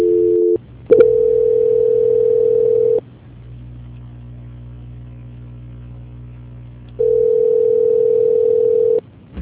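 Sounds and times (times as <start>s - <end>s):
telephone tone during a call transfer: 0.0s - 3.0s, 7.0s - 9.0s
humming telephone line noise: 0.0s - 9.3s.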